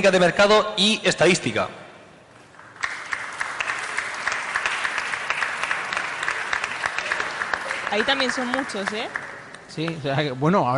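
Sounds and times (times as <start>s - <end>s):
speech: 0.0s - 1.8s, 7.9s - 10.7s
large audience applauding for graduates: 2.5s - 10.4s.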